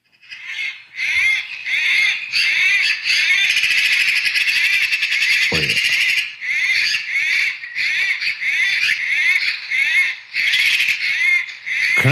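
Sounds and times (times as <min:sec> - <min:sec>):
Eurasian magpie harsh chattering while fighting: 0:00.2 - 0:12.1.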